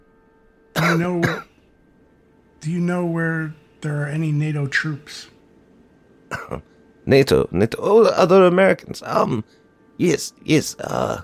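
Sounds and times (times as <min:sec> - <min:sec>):
quiet hum: 0:00.0 - 0:11.2
harsh raspy cough with throat-clearing: 0:00.8 - 0:01.6, 0:06.3 - 0:06.7
speech: 0:00.9 - 0:01.5, 0:02.6 - 0:05.4, 0:06.4 - 0:11.2.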